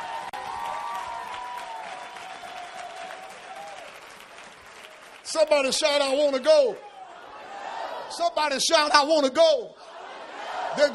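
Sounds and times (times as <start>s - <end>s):
large crowd clapping: 0.0s - 6.9s
speech: 5.3s - 6.9s, 8.2s - 9.8s, 10.8s - 10.9s.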